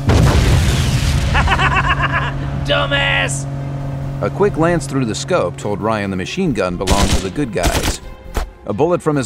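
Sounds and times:
fizzing grenade explosion: 0.1s - 1.9s
laughter: 1.3s - 2.6s
speech: 2.7s - 8.1s, 8.7s - 9.2s.

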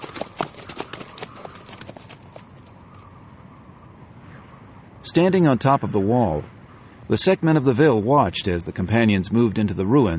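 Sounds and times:
stallion hooves in a full gallop: 0.0s - 3.0s
speech: 5.1s - 10.1s.

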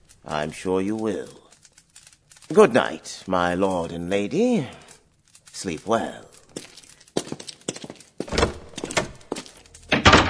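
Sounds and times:
speech: 0.2s - 1.4s, 2.5s - 4.8s, 5.6s - 6.3s
soundproof door closing with wooden clunks and a thud: 8.3s - 9.2s, 9.9s - 10.2s.

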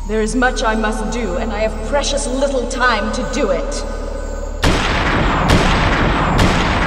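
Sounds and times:
speech: 0.1s - 4.0s
distorted time-warped gunshot blasts: 4.6s - 6.8s.

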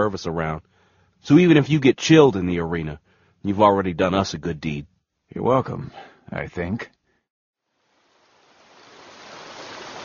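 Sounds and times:
speech: 0.0s - 7.0s
fast-flowing river water rushing: 8.2s - 10.0s.

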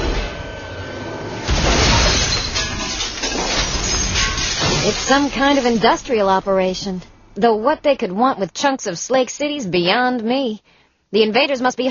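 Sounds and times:
low rumble of loaded truck: 0.0s - 8.6s
truckload of glass shards crashing into a big hopper: 1.5s - 6.8s
speech: 5.1s - 11.8s.

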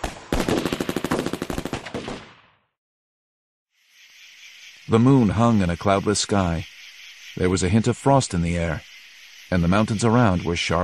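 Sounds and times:
rapid automatic gunfire in a night ambush: 0.0s - 2.4s
speech: 4.9s - 6.7s, 7.4s - 8.9s, 9.5s - 10.8s.

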